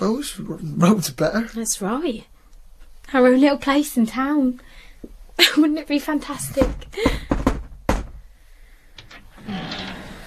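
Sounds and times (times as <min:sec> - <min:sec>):
speech: 0:00.0 - 0:02.3, 0:03.1 - 0:04.8, 0:05.4 - 0:07.4
sharp knocks on a door: 0:06.5 - 0:08.3.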